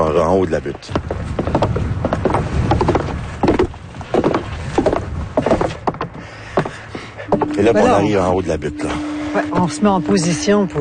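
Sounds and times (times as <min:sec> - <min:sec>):
faint outdoor background: 0:00.0 - 0:10.7
speech: 0:00.2 - 0:01.6, 0:07.6 - 0:10.7
footsteps climbing a long wooden staircase: 0:00.7 - 0:07.6.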